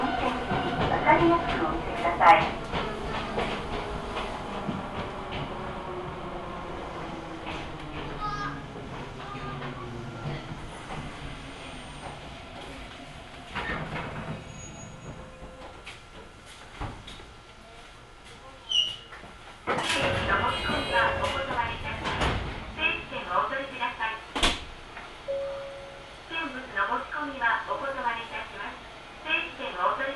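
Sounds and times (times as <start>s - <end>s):
steady low rumble of a local railway train car: 0.0s - 18.5s, 19.1s - 30.1s
sharp clunks and rattles of a train: 0.4s - 6.0s, 7.0s - 17.3s, 19.6s - 22.8s.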